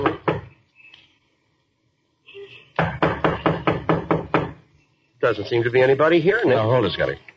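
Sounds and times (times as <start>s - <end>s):
knocking on a wooden door: 2.8s - 4.6s
speech: 5.2s - 7.3s.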